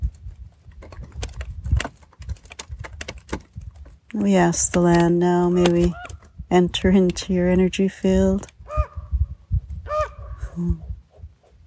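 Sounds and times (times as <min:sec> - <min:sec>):
low rumble of wind: 0:00.0 - 0:11.6
speech: 0:04.2 - 0:08.5, 0:10.6 - 0:10.8
raven croaking: 0:09.8 - 0:10.6.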